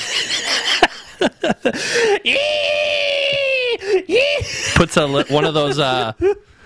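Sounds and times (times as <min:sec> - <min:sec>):
laughter: 0:00.0 - 0:02.5, 0:03.6 - 0:06.4
speech: 0:01.2 - 0:02.6, 0:04.8 - 0:06.5
person imitating pig squeals: 0:02.3 - 0:04.5.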